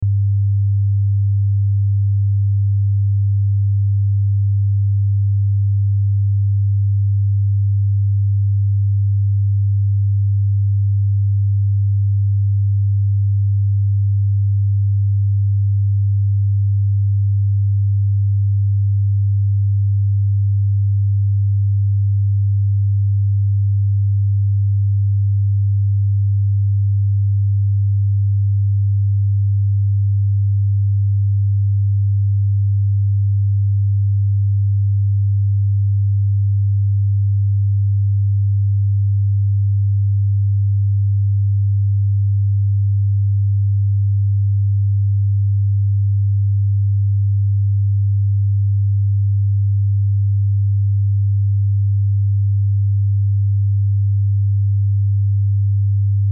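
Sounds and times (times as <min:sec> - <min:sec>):
100Hz sine wave test tone: 0:00.0 - 0:56.3.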